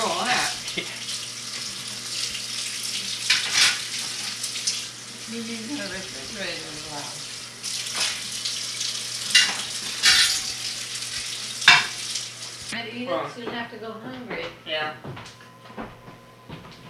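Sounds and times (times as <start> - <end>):
water running from a tap: 0.0 - 12.8
speech: 0.8 - 1.0, 5.3 - 7.2, 12.7 - 15.9.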